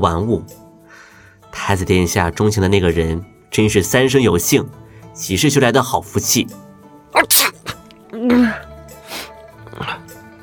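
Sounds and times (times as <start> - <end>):
speech: 0.0 - 0.6, 1.6 - 7.5, 8.2 - 8.6
person acting out sneezes: 7.2 - 9.4.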